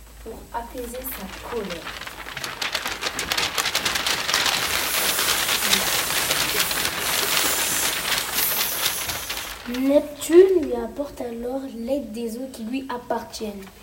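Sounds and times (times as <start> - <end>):
torrential rain pouring down: 0.0 - 11.0
speech: 0.2 - 2.1, 9.7 - 13.8.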